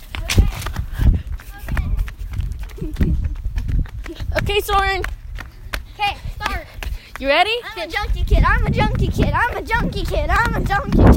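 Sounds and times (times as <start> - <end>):
footsteps of a child running on hard ground: 0.0 - 11.1
speech: 4.5 - 5.2, 7.2 - 11.1.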